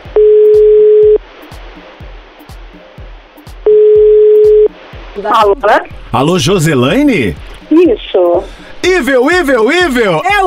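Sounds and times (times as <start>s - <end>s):
telephone ringback tones after dialing: 0.2s - 1.2s, 3.7s - 4.7s
speech: 5.2s - 10.4s.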